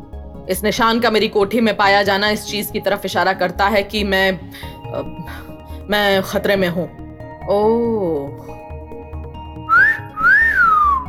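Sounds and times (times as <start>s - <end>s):
speech: 0.5s - 8.6s
person whistling through pursed lips: 9.6s - 11.0s.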